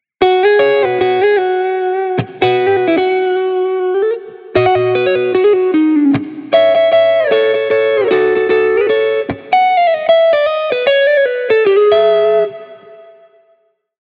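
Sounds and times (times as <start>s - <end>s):
guitar pattern: 0.2s - 13.7s.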